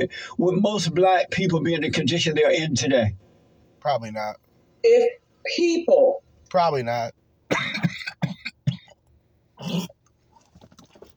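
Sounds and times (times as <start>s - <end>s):
speech: 0.0s - 3.2s, 3.8s - 7.8s
gravelly throat clearing: 7.5s - 9.0s, 9.6s - 10.0s
raspy coughs: 7.5s - 9.0s, 9.6s - 10.0s.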